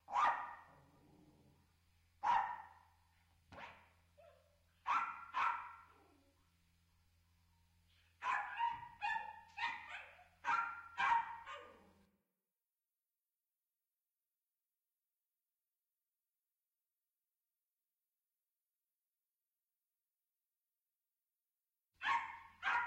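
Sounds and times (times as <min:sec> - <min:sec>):
dog barking in sharp separate woofs: 0:00.0 - 0:00.9, 0:02.2 - 0:06.2, 0:07.9 - 0:12.0, 0:22.0 - 0:22.8
low steady hum: 0:00.0 - 0:12.2.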